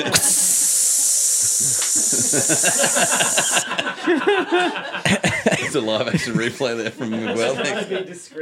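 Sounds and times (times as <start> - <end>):
speech: 0.0 - 0.5, 2.1 - 8.3
can of Guinness cracking open and fizzing: 0.0 - 3.6
laughter: 1.6 - 8.2.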